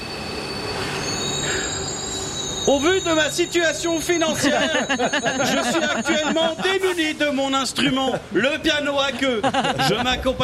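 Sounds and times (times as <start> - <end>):
metro train wheels squealing against the rails: 0.0 - 7.9
speech: 2.6 - 10.4
laughter: 4.1 - 10.4.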